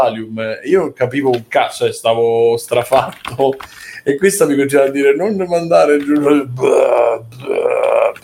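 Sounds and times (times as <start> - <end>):
speech: 0.0 - 8.2
voice imitating loud burps: 6.5 - 8.2.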